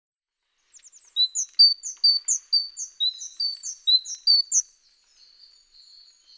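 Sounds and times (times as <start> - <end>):
great tit Parus major song with quick two-note phrases: 0.9 - 4.6.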